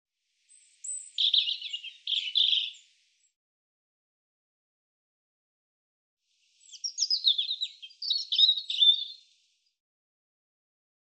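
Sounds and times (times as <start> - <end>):
European robin song: 0.4 - 3.0, 6.6 - 9.4.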